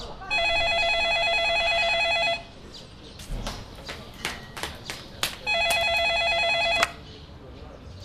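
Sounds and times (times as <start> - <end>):
telephone ringing: 0.3 - 2.5, 5.5 - 7.0.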